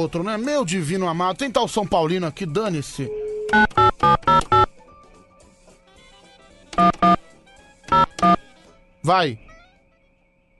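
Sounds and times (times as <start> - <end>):
speech: 0.0 - 3.9, 9.1 - 9.5
electronic alarm beeping: 3.5 - 4.7, 6.8 - 7.2, 7.9 - 8.4.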